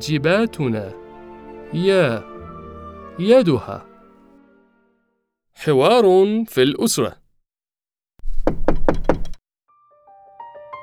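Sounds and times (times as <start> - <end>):
speech: 0.0 - 1.0, 1.7 - 2.3, 3.2 - 3.9, 5.6 - 7.2
knocking on a wooden door: 8.2 - 9.4.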